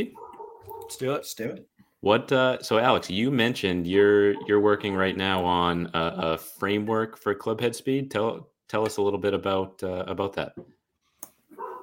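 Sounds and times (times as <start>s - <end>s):
speech: 0.0s - 0.2s, 0.9s - 10.8s
dogs barking: 0.0s - 1.0s, 4.1s - 5.2s, 11.5s - 11.8s.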